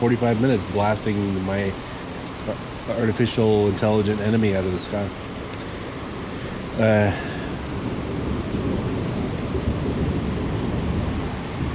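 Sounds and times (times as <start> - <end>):
speech: 0.0 - 5.2, 6.8 - 7.3
steady rain: 0.0 - 11.7
low rolling rumble of thunder: 6.6 - 11.7.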